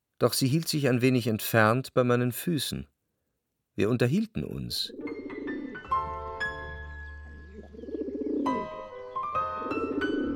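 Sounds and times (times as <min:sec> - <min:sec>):
speech: 0:00.2 - 0:02.9, 0:03.8 - 0:05.1
pigeons cooing: 0:04.9 - 0:05.8, 0:07.2 - 0:10.3.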